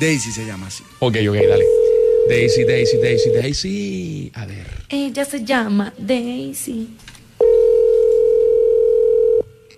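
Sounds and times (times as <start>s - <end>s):
speech: 0.0s - 7.2s
telephone ringing tone on an unanswered call: 1.4s - 3.5s, 7.4s - 9.7s.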